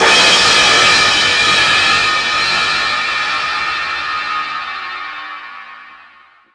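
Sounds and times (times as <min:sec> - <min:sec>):
drum kit cymbal: 0:00.0 - 0:06.4.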